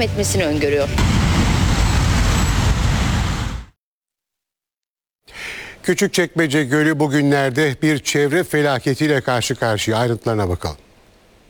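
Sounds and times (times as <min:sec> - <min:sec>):
speech: 0:00.0 - 0:01.4, 0:05.8 - 0:10.8
buses and traffic engines rumbling at a crowded bus terminal in Istanbul Turkey: 0:00.0 - 0:03.4.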